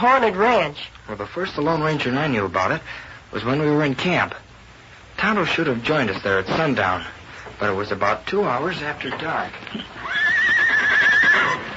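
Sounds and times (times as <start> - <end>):
speech: 0.0 - 4.5, 5.2 - 10.2
agitated horse giving a high wavering whinny: 9.8 - 11.7.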